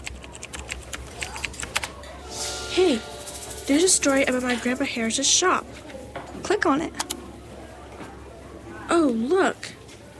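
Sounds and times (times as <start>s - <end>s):
children typing lightly on a computer keyboard in a classroom: 0.0s - 1.9s
speech: 2.8s - 3.1s, 3.7s - 5.8s, 6.6s - 7.0s, 9.0s - 9.6s.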